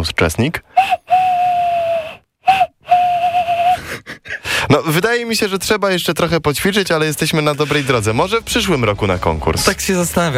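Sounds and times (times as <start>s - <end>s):
speech: 0.0s - 1.0s, 4.7s - 10.3s
bird call imitated by blowing into cupped hands: 0.8s - 3.8s.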